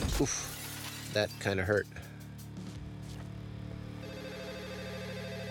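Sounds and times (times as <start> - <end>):
speech: 0.2 - 0.5, 1.1 - 2.1
telephone ringing with a warbling electronic trill: 4.0 - 5.4.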